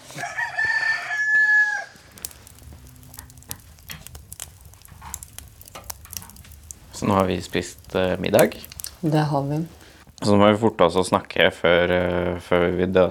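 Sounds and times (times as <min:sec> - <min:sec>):
hens scratching: 0:00.0 - 0:10.2
rooster crowing: 0:00.1 - 0:02.2
speech: 0:07.0 - 0:13.1.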